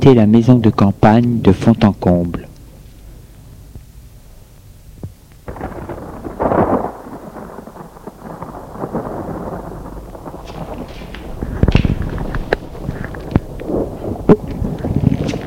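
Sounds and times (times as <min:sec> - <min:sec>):
speech: 0:00.0 - 0:02.5
thunder rolling in a thunderstorm: 0:05.5 - 0:15.4.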